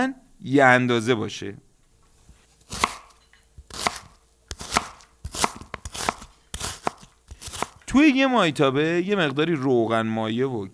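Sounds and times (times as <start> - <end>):
speech: 0.0 - 1.6, 7.9 - 10.7
knife thinly slicing a medium onion: 2.1 - 8.2.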